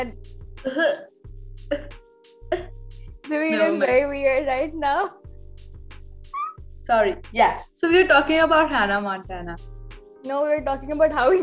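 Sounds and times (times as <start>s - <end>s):
speech: 0.0s - 1.1s, 1.7s - 2.7s, 3.3s - 5.2s, 6.9s - 11.4s
forced deliberate fake cough: 0.6s - 1.1s, 1.7s - 2.8s
voiced humming sounds: 6.4s - 6.6s.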